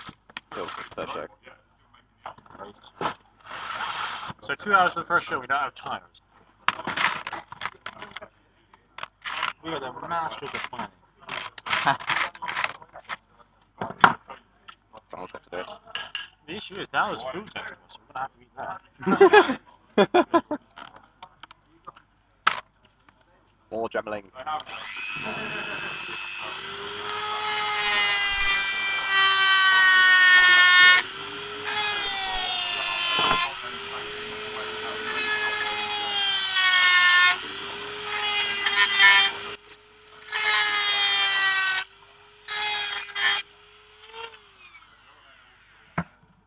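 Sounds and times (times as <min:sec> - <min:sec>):
speech: 0:00.6 - 0:01.6, 0:04.5 - 0:06.9, 0:09.6 - 0:11.0, 0:11.8 - 0:12.2, 0:16.6 - 0:20.4, 0:23.9 - 0:27.2
Dremel rotary tool cutting through plastic: 0:06.7 - 0:08.2, 0:09.0 - 0:09.6, 0:10.4 - 0:13.2, 0:24.6 - 0:45.4
laughter: 0:19.0 - 0:20.7.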